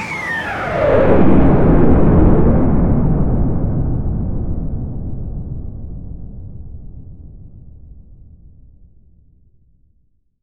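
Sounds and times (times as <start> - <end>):
bomb explosion: 0.5 - 8.3.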